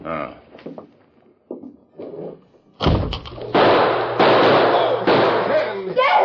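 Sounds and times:
gunshots knocking a gun from a man's hand: 2.8 - 5.9.

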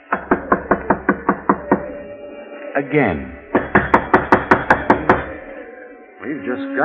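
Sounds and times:
knocking on a wooden door: 0.1 - 1.9, 3.5 - 5.4
speech: 2.8 - 3.4, 6.3 - 6.8.

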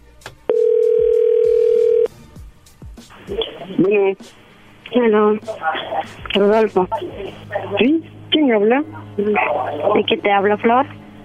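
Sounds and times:
electronic ringing tone from a phone call: 0.5 - 2.1
speech: 3.3 - 11.0.

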